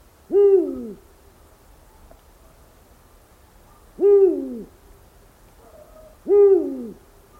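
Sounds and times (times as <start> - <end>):
Eurasian eagle owl call: 0.3 - 1.0, 3.7 - 4.7, 5.6 - 7.0.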